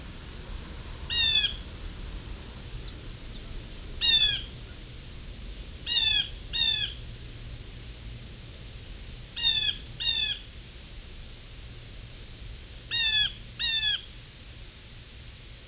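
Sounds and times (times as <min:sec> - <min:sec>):
Blue Jay: 0:01.1 - 0:01.6, 0:02.8 - 0:04.6, 0:05.8 - 0:07.0, 0:09.4 - 0:10.5, 0:12.6 - 0:14.2.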